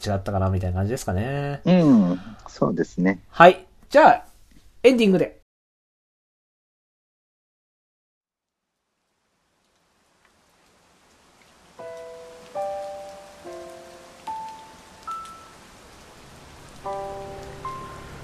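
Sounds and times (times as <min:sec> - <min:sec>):
speech: 0:00.0 - 0:05.4
rain pattering on a surface: 0:08.8 - 0:18.2
gentle piano-like slow melody: 0:11.8 - 0:18.2.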